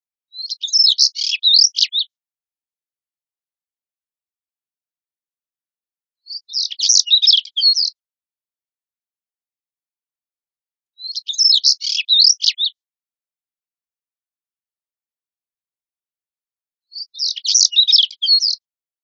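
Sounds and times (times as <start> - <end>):
African stonechat singing: 0.4 - 2.1, 6.2 - 8.0, 11.0 - 12.8, 16.9 - 18.6.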